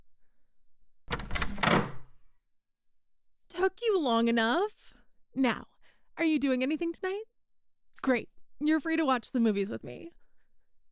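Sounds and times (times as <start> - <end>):
door rattling and scraping: 1.1 - 2.2
speech: 3.7 - 7.3, 8.0 - 10.2.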